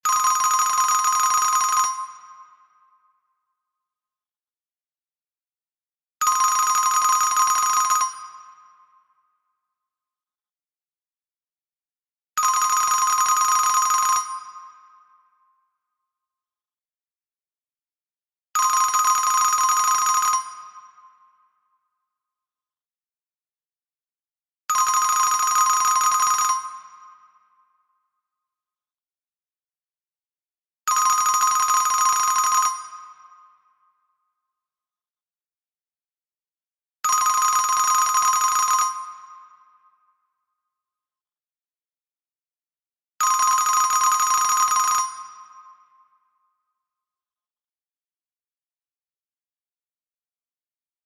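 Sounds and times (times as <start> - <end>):
German telephone: 0.1 - 2.1, 6.2 - 8.2, 12.4 - 14.4, 18.6 - 20.6, 24.7 - 26.7, 30.9 - 32.9, 37.1 - 39.1, 43.2 - 45.3.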